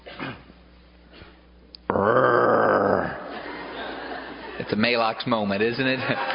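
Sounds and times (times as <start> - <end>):
man imitating a lion's roar: 1.9 - 3.3
laughter: 3.0 - 6.3
speech: 4.7 - 6.3.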